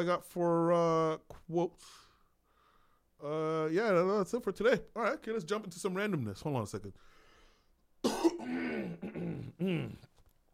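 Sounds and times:
speech: 0.0s - 2.1s, 3.2s - 7.2s, 8.4s - 10.1s
man clearing throat: 8.0s - 10.1s.

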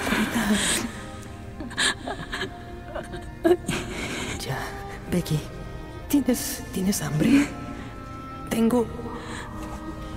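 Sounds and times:
speech: 0.5s - 1.0s, 5.2s - 7.6s, 8.6s - 9.0s
girl whimpering and crying in darkness: 0.6s - 4.4s.

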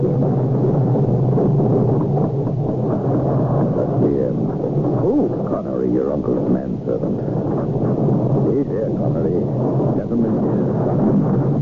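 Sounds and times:
deep continuous rolling thunder: 0.0s - 11.6s.

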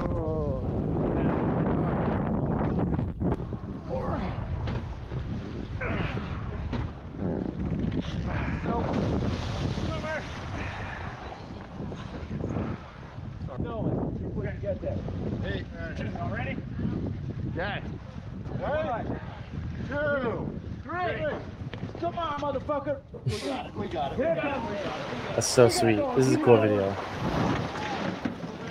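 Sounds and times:
heavy gear boat raft capsizing mid-river in rough rushing water: 0.0s - 28.6s
wind buffeting the microphone: 0.0s - 28.6s
speech: 25.4s - 27.2s
people shouting indistinctly: 27.7s - 28.2s.

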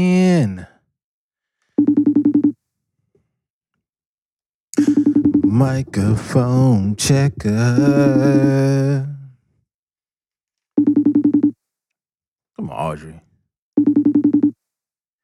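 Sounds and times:
speech: 0.0s - 0.7s, 5.6s - 9.1s, 12.7s - 13.2s
phone ringtone trilling: 1.8s - 2.6s, 4.8s - 5.8s, 10.8s - 11.6s, 13.8s - 14.6s.

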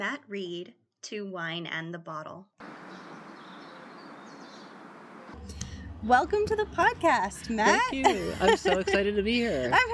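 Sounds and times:
speech: 0.0s - 2.8s, 5.4s - 9.9s
birds chirping outdoors on a sunny summer day in Napa Valley: 2.6s - 5.4s
laughter: 7.6s - 9.9s.

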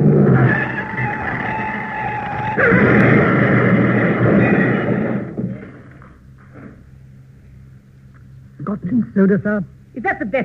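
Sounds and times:
tyres screeching in a long skid: 0.2s - 5.9s
car crash: 0.2s - 6.0s
speech: 9.2s - 10.4s.

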